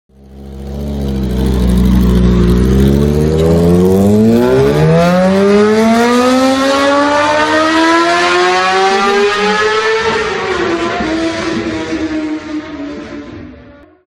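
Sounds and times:
motorcycle: 0.1s - 14.1s.

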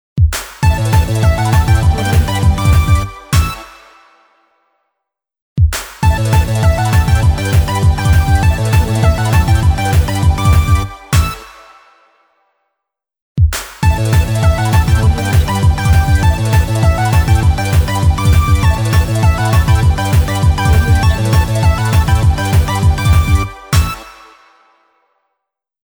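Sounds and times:
happy pop animation jingle logo: 0.7s - 3.7s, 6.0s - 11.4s, 13.8s - 24.4s.

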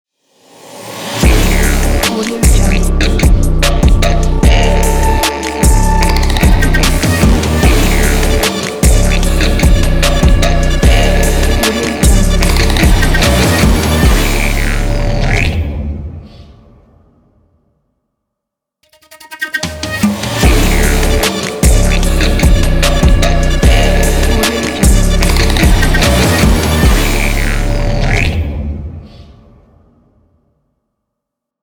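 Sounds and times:
tribal trap beat: 1.2s - 15.6s, 19.0s - 28.4s
didgeridoo: 1.2s - 16.5s, 19.5s - 29.5s.

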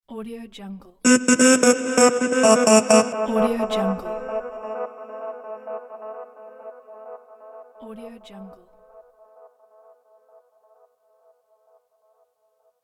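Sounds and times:
man's voice with delay effect: 1.1s - 6.7s.

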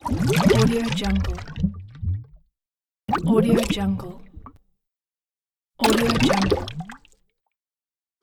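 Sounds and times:
large bubbles: 0.0s - 2.4s, 5.9s - 7.0s.

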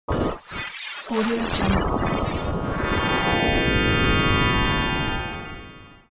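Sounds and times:
alien beam tone: 0.4s - 6.0s.

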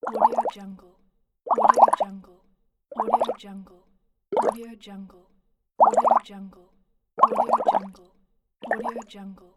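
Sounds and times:
water bubbling: 0.0s - 0.6s, 1.5s - 2.1s, 2.9s - 3.4s, 4.4s - 4.6s, 5.8s - 6.2s, 7.2s - 8.0s, 8.6s - 9.1s.

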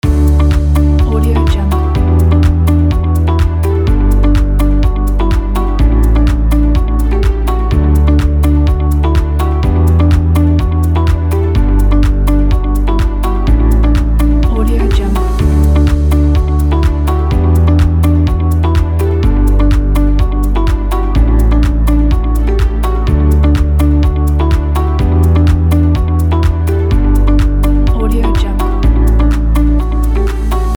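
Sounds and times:
corporate music loop: 0.0s - 30.7s.

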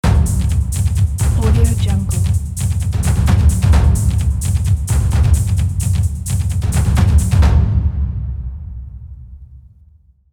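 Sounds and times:
drum introduction: 0.0s - 7.8s.

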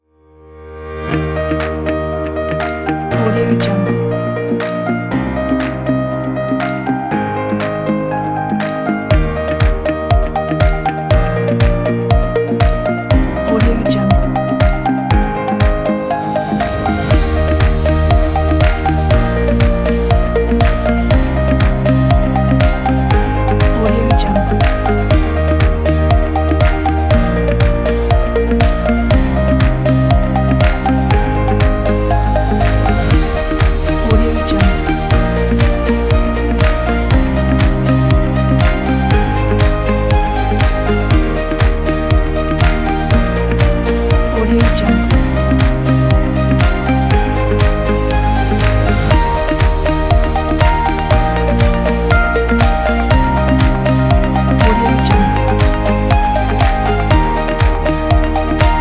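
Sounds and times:
upbeat corporate music: 1.2s - 58.8s.

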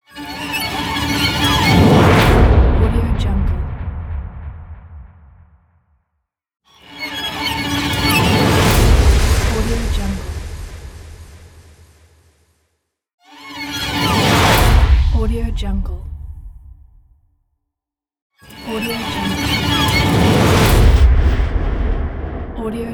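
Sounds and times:
scary strings swoosh: 0.1s - 5.3s, 6.8s - 11.9s, 13.3s - 15.8s, 18.4s - 22.8s.

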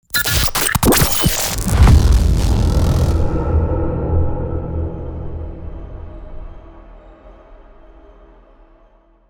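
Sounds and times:
glitchy explosion: 0.1s - 5.5s.

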